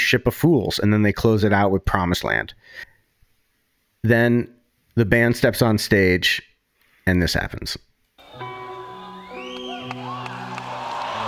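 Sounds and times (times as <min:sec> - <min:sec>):
speech: 0:00.1 - 0:02.9, 0:04.0 - 0:06.5, 0:07.1 - 0:08.5
sustained instrumental tones: 0:08.2 - 0:11.0
small venue crowd cheering and whooping: 0:08.2 - 0:11.2
whistles: 0:08.7 - 0:11.2.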